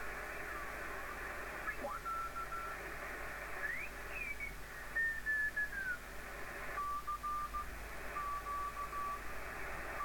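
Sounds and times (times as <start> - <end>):
shortwave radio hiss: 0.0 - 10.0
keyed Morse code tone bursts: 6.8 - 9.2.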